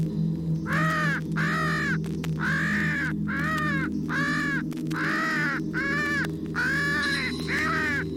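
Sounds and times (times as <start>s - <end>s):
steady low hum: 0.0s - 8.1s
crow distress cries: 0.6s - 8.1s.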